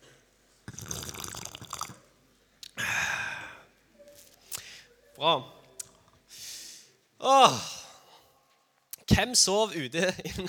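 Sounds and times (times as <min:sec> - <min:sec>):
water pouring into a glass: 0:00.7 - 0:02.1
speech: 0:05.2 - 0:05.6, 0:07.2 - 0:07.7, 0:09.2 - 0:10.4.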